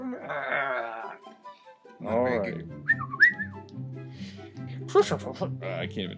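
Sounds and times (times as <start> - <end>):
person making rough growling vocal noises: 0.0 - 1.2
speech: 2.0 - 2.8, 4.9 - 6.1.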